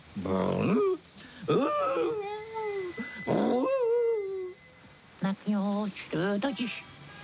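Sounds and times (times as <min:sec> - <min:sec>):
speech: 0:00.2 - 0:02.4, 0:05.4 - 0:06.9
man imitating a dog's whine and growl: 0:00.2 - 0:04.6.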